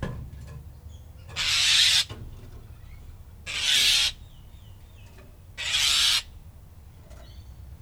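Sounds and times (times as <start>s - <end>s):
squawk: 1.4s - 2.1s, 3.5s - 4.2s, 5.6s - 6.3s.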